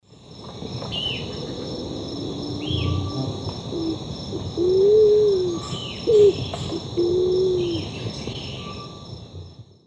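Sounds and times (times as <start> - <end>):
Patagioenas speciosa singing in the Eastern Lowlands of South America: 2.0 - 7.9.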